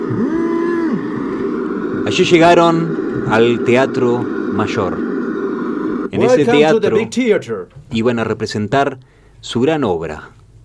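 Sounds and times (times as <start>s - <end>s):
cow mooing: 0.0s - 3.6s
constant hum: 0.0s - 10.6s
speech: 2.1s - 5.1s, 6.2s - 10.4s.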